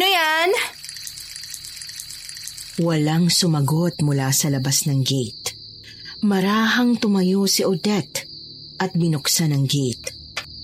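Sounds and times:
water pouring from a strong tap by a gate: 0.0 - 3.6
speech: 2.8 - 5.6, 6.2 - 10.2.

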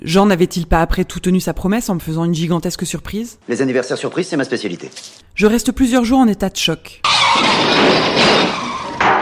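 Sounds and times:
speech: 0.0 - 8.7
car skidding with tires squealing: 7.0 - 9.1.

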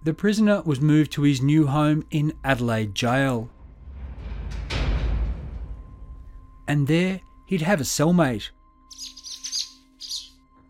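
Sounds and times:
speech: 0.0 - 3.6, 6.7 - 9.2
baby sparrow chirping: 8.9 - 10.4.

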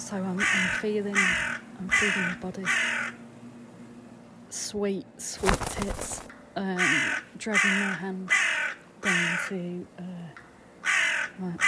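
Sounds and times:
speech: 0.1 - 3.0, 4.5 - 10.4, 11.4 - 11.6
crow cawing: 0.4 - 3.2, 6.8 - 9.4, 10.8 - 11.6.

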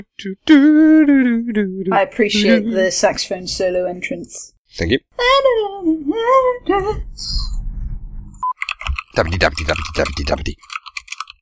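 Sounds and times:
speech: 0.0 - 7.5, 9.2 - 10.8
loud rapid keyboard clatter with keys hammered: 8.6 - 11.3.

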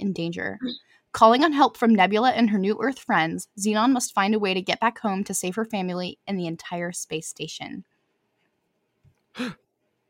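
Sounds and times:
speech: 0.0 - 7.9, 9.4 - 9.6
person gasping: 9.3 - 9.6.

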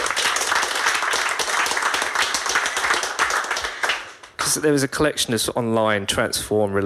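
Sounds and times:
crowd applauding with many hands clapping: 0.0 - 4.5
speech: 4.5 - 6.8.

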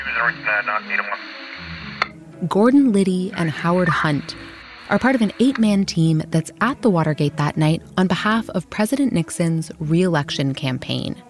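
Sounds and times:
crackly tinny voice over a two-way radio in a hotel room: 0.0 - 1.2
steady static hiss: 0.0 - 2.2, 3.4 - 5.7
speech: 0.1 - 1.8, 2.4 - 11.2.

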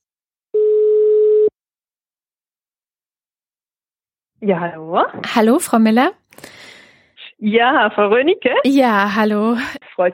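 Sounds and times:
telephone ringing tone on a call to Switzerland: 0.5 - 1.5
speech: 4.4 - 6.6, 7.4 - 10.1.

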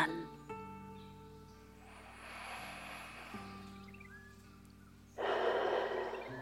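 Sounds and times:
quiet steady tonal background: 0.0 - 6.4
deep breaths during a guided breathing exercise: 1.7 - 6.4.

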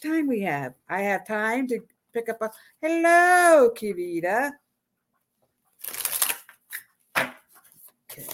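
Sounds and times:
speech: 0.0 - 4.6, 8.2 - 8.3
oracle cards being shuffled: 5.8 - 8.3.

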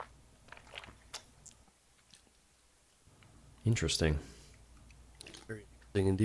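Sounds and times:
person sipping a fizzy grapefruit alcoholic drink: 0.5 - 2.4, 4.5 - 5.6
speech: 3.6 - 4.4, 5.5 - 6.2.

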